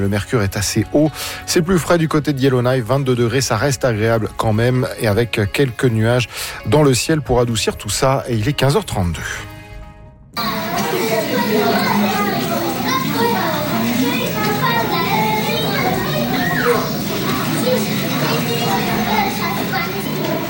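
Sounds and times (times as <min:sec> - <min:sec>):
speech: 0:00.0 - 0:09.5
dense crowd of children playing and chattering: 0:10.4 - 0:20.4.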